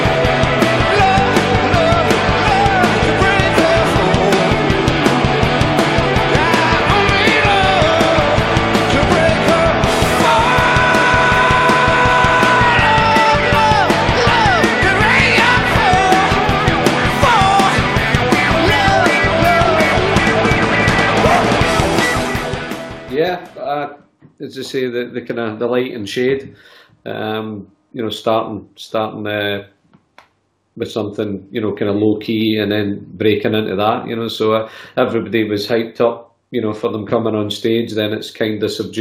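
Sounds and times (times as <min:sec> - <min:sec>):
pounding drums: 0:00.0 - 0:23.2
loud dense rock chorus with distorted guitars: 0:00.0 - 0:23.5
singer letting out a long strained scream: 0:06.2 - 0:22.5
speech: 0:24.5 - 0:29.8, 0:30.8 - 0:38.9.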